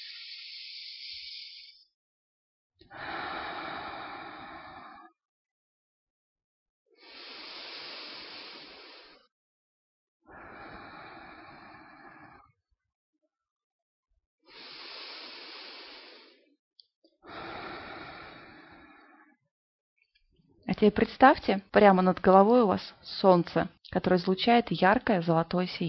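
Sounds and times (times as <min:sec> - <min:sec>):
slow deep breathing in a breathing exercise: 0:00.0 - 0:01.9, 0:02.9 - 0:05.2, 0:07.0 - 0:09.3, 0:10.3 - 0:12.5, 0:14.5 - 0:16.6, 0:17.2 - 0:19.4
speech: 0:20.8 - 0:25.8.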